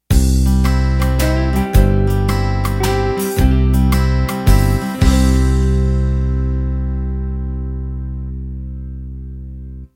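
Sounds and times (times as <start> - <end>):
country music ending in 3-4 time: 0.1 - 9.8.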